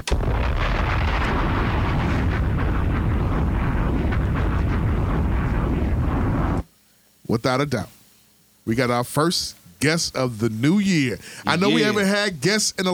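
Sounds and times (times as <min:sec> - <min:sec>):
bomb explosion sound effect: 0:00.0 - 0:06.6
speech: 0:07.3 - 0:08.0, 0:08.7 - 0:12.9.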